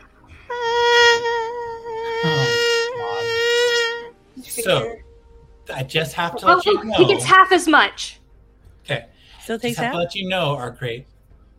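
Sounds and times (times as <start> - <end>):
high whining mosquito buzz sound effect: 0.4 - 5.0
laughter: 2.2 - 3.3, 4.6 - 5.0, 5.8 - 7.4, 9.7 - 10.1
speech: 4.6 - 5.0, 5.8 - 8.2, 8.9 - 11.1.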